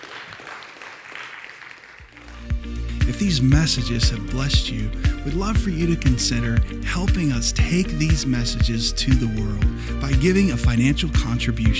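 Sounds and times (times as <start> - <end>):
audience applauding in a large room: 0.0 - 4.2
low sustained tone: 2.2 - 11.7
speech: 3.1 - 11.7.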